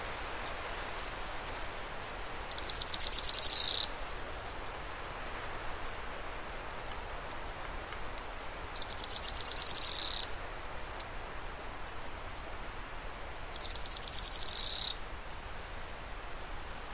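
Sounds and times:
faint hiss: 0.0s - 16.9s
bird singing a high-pitched descending trill: 2.5s - 3.9s, 8.8s - 10.3s, 13.5s - 15.0s.

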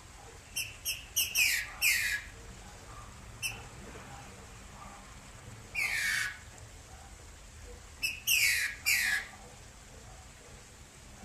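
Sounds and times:
female Green-winged saltator whistling: 0.6s - 2.2s, 5.8s - 6.4s, 8.0s - 9.3s.

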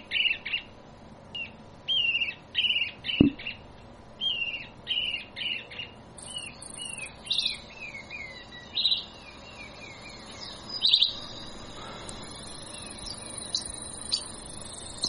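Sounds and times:
narrow-billed woodcreeper song of chirps and trills: 0.0s - 0.8s, 1.4s - 15.0s
faint steady insect buzz: 6.2s - 7.6s, 9.3s - 15.0s.

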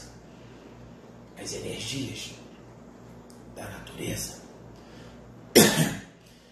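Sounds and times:
speech: 1.5s - 2.4s
man coughing: 5.5s - 6.1s.

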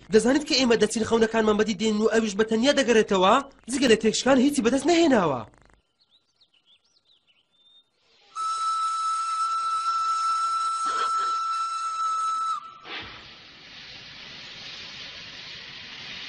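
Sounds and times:
speech: 0.1s - 5.6s
steam train steam hissing: 8.1s - 16.2s
steam train whistle as the train departs: 8.4s - 13.1s.

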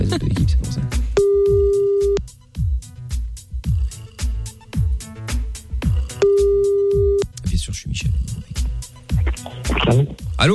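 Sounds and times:
rhythmic bass-heavy music beats: 0.0s - 10.5s
telephone call ringing tone: 1.2s - 2.2s, 6.2s - 7.2s.

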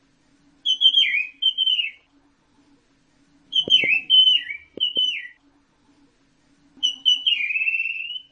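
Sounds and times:
orange-headed thrush singing whistled phrases: 0.6s - 2.1s, 3.5s - 5.4s, 6.8s - 8.3s
sharp clicks: 4.8s - 5.2s.

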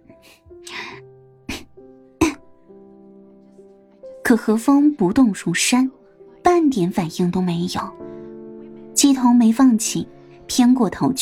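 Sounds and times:
person coughing low to get someone's attention: 0.7s - 2.4s
throat clearing: 1.5s - 2.5s
speech: 4.3s - 6.0s, 6.7s - 8.0s, 9.0s - 11.2s.

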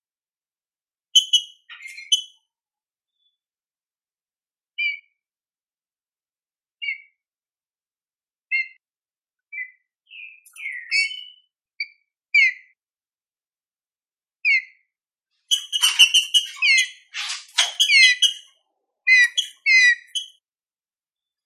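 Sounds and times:
green-winged saltator classic-style song: 1.2s - 2.4s, 9.5s - 12.6s, 15.5s - 18.5s, 19.1s - 20.4s.

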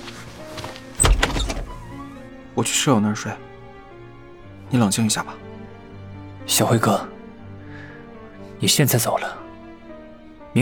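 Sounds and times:
door opening thunk with rattle: 0.0s - 2.3s
speech: 2.6s - 3.5s, 4.7s - 5.5s, 6.5s - 7.2s, 8.6s - 9.4s.

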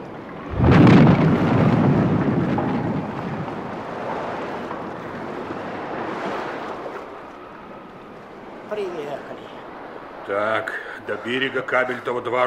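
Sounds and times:
storm wind and rain roaring: 0.0s - 12.4s
heavy crash of a schooner driven onto a shoal: 0.5s - 5.5s
speech: 10.3s - 12.4s.

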